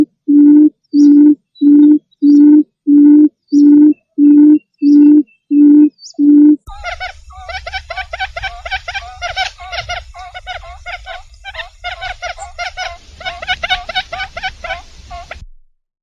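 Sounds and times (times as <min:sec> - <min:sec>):
bird hooting: 0:00.0 - 0:15.4
harsh chattering bird calls: 0:03.5 - 0:15.4
low rumbling background: 0:06.4 - 0:15.4.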